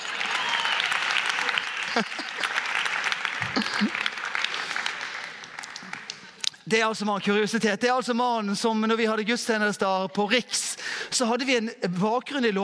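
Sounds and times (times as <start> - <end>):
audience applause: 0.0 - 6.4
person laughing: 1.8 - 2.7, 3.4 - 4.1
speech: 2.0 - 2.3, 6.7 - 12.6.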